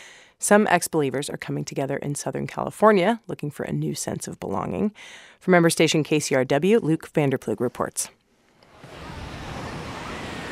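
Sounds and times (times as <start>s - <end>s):
speech: 0.5s - 8.2s
waves lapping on a windy Southern California state beach: 8.6s - 10.5s
steady wind noise on a beach: 8.7s - 10.5s.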